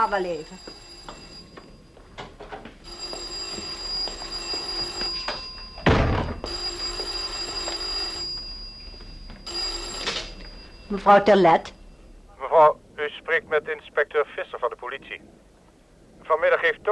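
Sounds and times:
speech: 0:00.0 - 0:00.8, 0:10.9 - 0:11.8, 0:13.4 - 0:15.4, 0:16.3 - 0:16.9
old-style telephone bell ringing: 0:00.0 - 0:12.4.

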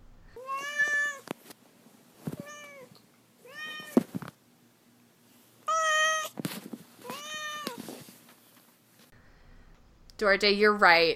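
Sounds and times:
cat meowing: 0:00.4 - 0:01.3, 0:02.4 - 0:04.0, 0:05.7 - 0:06.4, 0:07.0 - 0:07.8
speech: 0:10.2 - 0:11.1.

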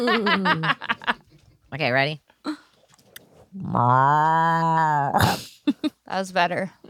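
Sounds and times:
speech: 0:00.0 - 0:00.9, 0:01.7 - 0:02.6, 0:03.6 - 0:05.5, 0:06.1 - 0:06.8
person imitating a cow moo: 0:03.6 - 0:05.2.

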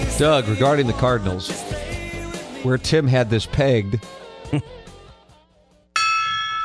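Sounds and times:
speech: 0:00.2 - 0:01.7, 0:02.6 - 0:04.7
gong struck: 0:06.0 - 0:06.6.

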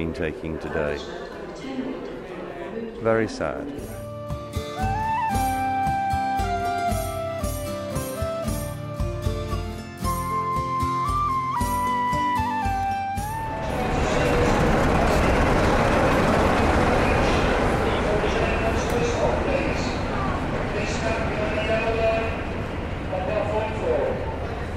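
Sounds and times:
speech: 0:00.0 - 0:02.0, 0:03.0 - 0:05.0
music: 0:03.7 - 0:16.8
train rumbling and rattling along the track: 0:13.3 - 0:24.7.

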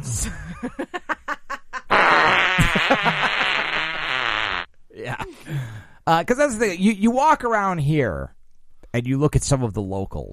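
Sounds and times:
speech: 0:00.1 - 0:01.0, 0:06.1 - 0:10.3
laughter: 0:00.1 - 0:03.9
comedic fart sound effect: 0:01.9 - 0:04.7.

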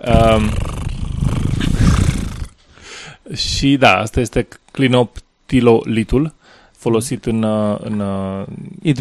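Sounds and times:
speech: 0:00.0 - 0:00.7, 0:03.4 - 0:08.9
person imitating a cat purr with their voice: 0:00.0 - 0:02.6.

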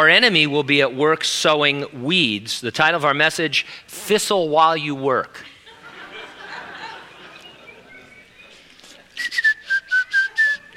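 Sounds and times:
speech: 0:00.0 - 0:05.5
light laughter: 0:05.4 - 0:09.2
soft murmuring crowd noise: 0:05.5 - 0:10.7
person whistling a short tune: 0:09.2 - 0:10.7.

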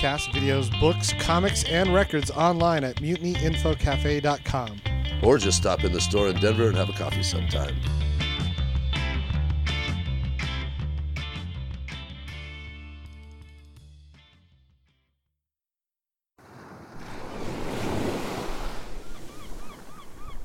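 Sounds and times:
speech: 0:00.0 - 0:08.1
music: 0:00.0 - 0:15.3
ocean waves breaking on a beach in the morning: 0:16.4 - 0:20.4
faint bird calls: 0:18.9 - 0:20.4.

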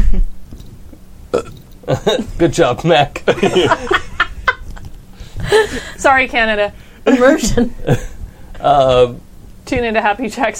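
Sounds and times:
loud burp: 0:01.3 - 0:02.0
speech: 0:01.9 - 0:04.0, 0:05.5 - 0:10.5
laughter: 0:03.2 - 0:05.9.

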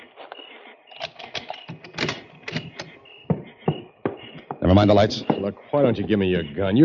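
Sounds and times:
keys rattling in the lock of a station door: 0:01.0 - 0:02.9
speech: 0:04.7 - 0:06.8.

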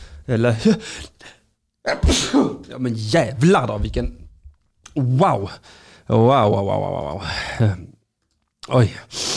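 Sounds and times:
speech: 0:00.3 - 0:04.2, 0:05.0 - 0:07.9, 0:08.7 - 0:09.3
person sneezing: 0:01.8 - 0:02.7
sharp inhaled breath: 0:09.1 - 0:09.3.

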